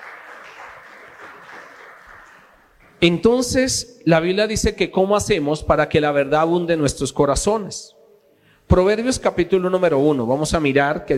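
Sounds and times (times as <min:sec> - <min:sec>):
church audience applauding: 0:00.0 - 0:03.0
speech: 0:03.0 - 0:08.0, 0:08.7 - 0:11.1.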